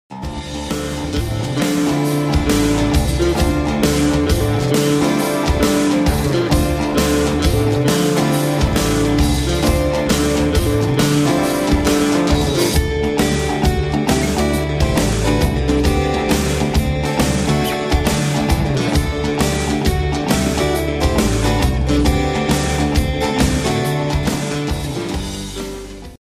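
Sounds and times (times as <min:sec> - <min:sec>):
guitar ringtone: 0:00.1 - 0:26.2.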